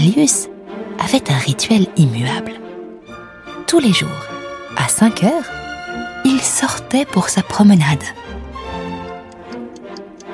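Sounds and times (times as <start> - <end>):
speech: 0.1 - 2.6, 3.7 - 5.6, 6.4 - 8.2
clock ticking: 8.6 - 10.3.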